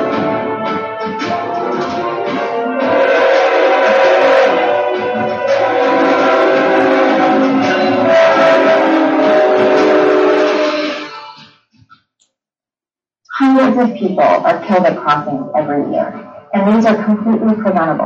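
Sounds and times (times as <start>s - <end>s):
train horn blaring in a loud sustained chord: 0.0s - 11.4s
2000-ton train rumbling down an avenue: 1.2s - 11.3s
speech: 13.8s - 18.0s.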